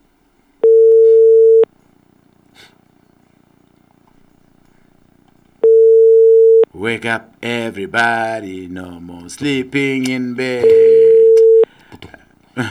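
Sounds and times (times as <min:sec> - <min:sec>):
phone ringback tone: 0:00.6 - 0:01.7, 0:05.6 - 0:06.7, 0:10.6 - 0:11.7
speech: 0:06.8 - 0:11.0.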